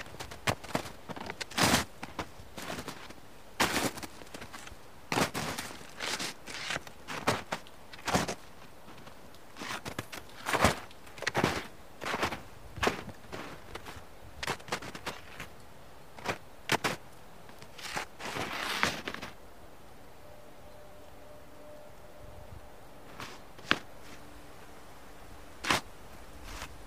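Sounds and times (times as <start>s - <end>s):
footsteps crunching through ice and snow: 0.0s - 15.5s, 16.2s - 19.4s, 23.0s - 24.4s, 25.5s - 26.8s
faint steady hum: 0.0s - 26.8s.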